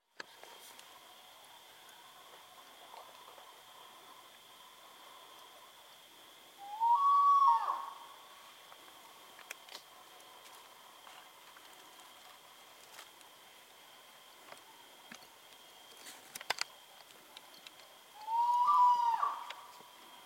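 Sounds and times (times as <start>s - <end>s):
spot-bellied eagle owl calling: 6.6s - 8.4s, 18.1s - 19.8s.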